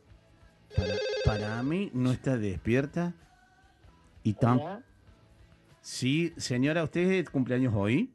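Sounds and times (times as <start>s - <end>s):
ringback tone of an outgoing telephone call: 0.7s - 1.7s
speech: 1.3s - 3.3s, 4.3s - 4.9s, 5.9s - 8.1s.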